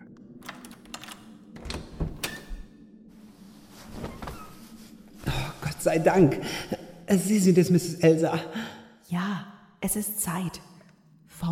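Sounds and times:
key turning in a door lock: 0.4 - 2.4
speech: 5.8 - 8.6, 9.9 - 10.7.

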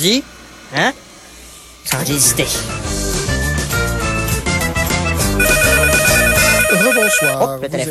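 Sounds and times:
speech: 0.0 - 1.1, 1.8 - 3.0, 7.0 - 7.9
dense loud music: 2.7 - 7.4
telephone ringing: 5.4 - 7.4.

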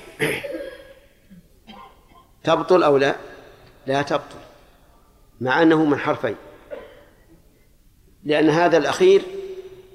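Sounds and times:
man clearing his throat during a lecture: 0.0 - 2.3, 6.7 - 7.2
speech: 0.2 - 0.6, 2.4 - 4.5, 5.4 - 6.5, 8.2 - 9.4.

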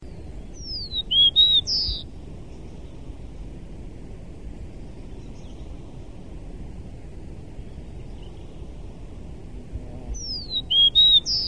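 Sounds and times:
bird singing a short whistled phrase: 0.6 - 2.0, 10.2 - 11.4.

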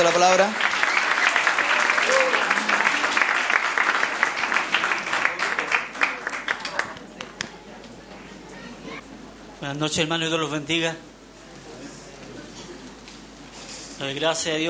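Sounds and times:
speech: 0.0 - 0.7, 9.7 - 11.1, 14.0 - 14.6
church congregation applauding during an evening service: 0.0 - 7.4.

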